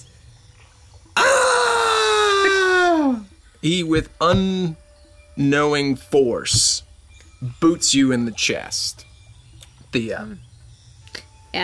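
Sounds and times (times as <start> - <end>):
person screaming: 1.2 - 3.2
speech: 3.6 - 4.8, 5.4 - 9.1, 9.9 - 10.5, 11.1 - 11.6.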